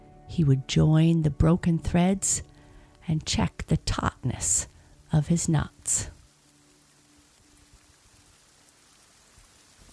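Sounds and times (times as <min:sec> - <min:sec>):
speech: 0:00.4 - 0:02.5, 0:03.1 - 0:06.2
steady rain falling: 0:02.3 - 0:09.9.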